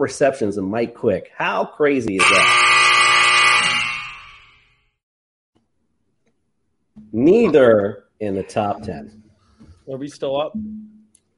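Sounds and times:
speech: 0.0 - 2.8, 7.1 - 9.2, 9.9 - 10.9
game show buzzer: 2.2 - 4.8.

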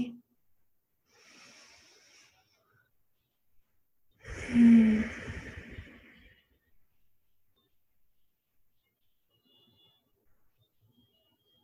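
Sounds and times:
slow deep breath with soft airy exhale: 1.1 - 2.7, 4.2 - 6.5.

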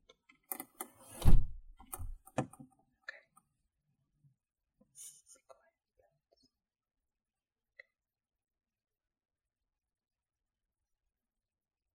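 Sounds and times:
door swinging shut with solid low thud: 1.1 - 2.2.

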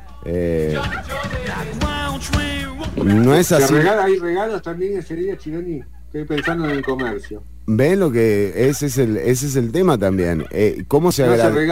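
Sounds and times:
speech: 0.2 - 11.7
turkey gobbling: 2.8 - 4.1, 5.8 - 7.5, 8.5 - 9.1, 10.1 - 10.8.

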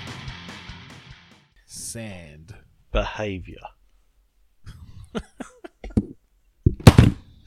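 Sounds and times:
speech: 1.9 - 3.8
microphone knocked over: 5.9 - 7.3
loud thudding crash: 6.8 - 7.3.

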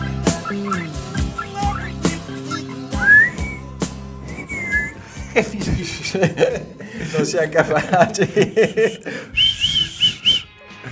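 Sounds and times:
person whistling an off-key wobbly tune: 0.0 - 5.3, 9.3 - 10.6
laughter: 4.4 - 10.9
speech: 5.4 - 9.4.

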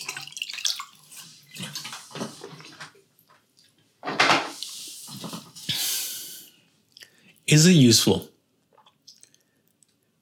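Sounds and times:
water pouring: 0.0 - 2.9
speech: 7.5 - 8.3
person sipping and gulping water: 8.7 - 9.8.

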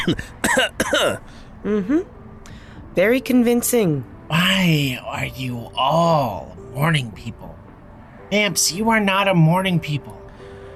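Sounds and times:
person coughing: 0.0 - 1.2
speech: 0.0 - 2.2, 3.0 - 7.6, 8.3 - 10.2.

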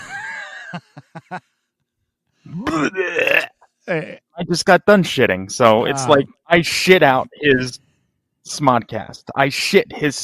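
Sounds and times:
laughter: 0.0 - 1.6
speech: 0.7 - 1.6, 2.4 - 7.8, 8.4 - 10.2
person imitating vomiting: 2.5 - 4.3.

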